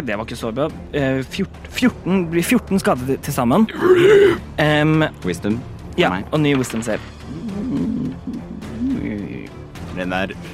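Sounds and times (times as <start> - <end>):
speech: 0.0 - 7.9, 10.0 - 10.5
person imitating a monster roar: 3.7 - 4.4, 7.3 - 9.3.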